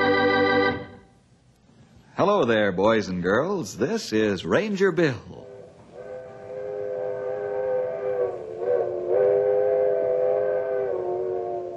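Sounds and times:
speech: 2.2s - 5.5s
old-fashioned coal-burning steam locomotive whistle: 5.4s - 11.7s.

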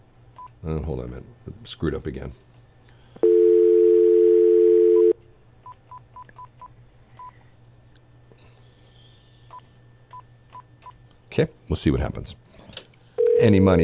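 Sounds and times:
speech: 0.6s - 2.5s, 11.4s - 12.4s, 13.4s - 13.8s
telephone dial tone: 3.2s - 5.2s.

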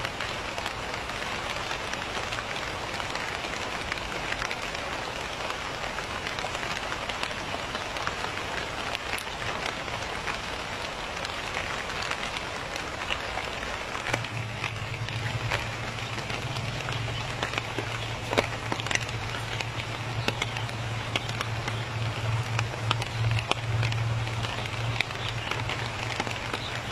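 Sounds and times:
light rain pattering by a lotus pond in the evening: 0.0s - 26.9s
low steady hum: 14.0s - 26.9s.

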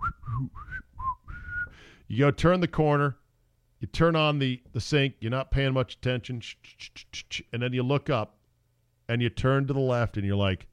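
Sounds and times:
person whistling a short wavering tune: 0.0s - 1.8s
brief breaths between whistled phrases: 0.7s - 2.1s
speech: 2.1s - 3.2s, 3.8s - 8.4s, 9.1s - 10.7s.

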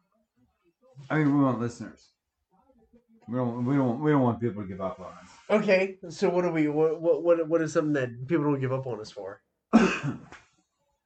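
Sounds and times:
speech: 1.0s - 2.2s, 3.3s - 10.4s
person coughing with harsh throaty hacks: 9.7s - 10.3s.

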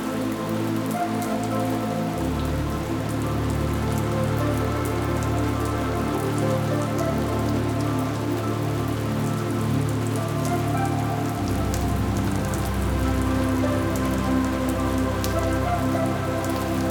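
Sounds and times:
rain falling steadily in a garden: 0.0s - 16.8s.

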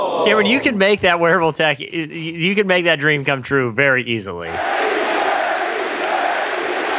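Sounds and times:
large crowd chanting a name in unison: 0.0s - 0.6s, 4.6s - 6.9s
speech: 0.0s - 4.8s.

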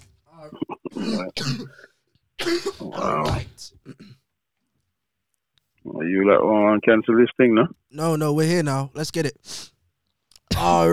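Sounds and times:
throat clearing from someone with a sore throat: 0.4s - 1.8s, 2.4s - 4.2s
person with a sore throat coughing: 0.9s - 1.8s, 2.4s - 4.2s, 10.5s - 10.9s
speech: 1.2s - 4.2s, 5.8s - 9.7s, 10.6s - 10.9s.

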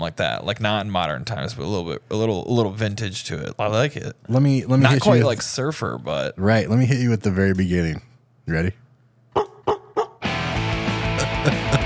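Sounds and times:
speech: 0.0s - 8.8s
dog barking: 9.4s - 10.2s
laughter: 11.2s - 11.8s.

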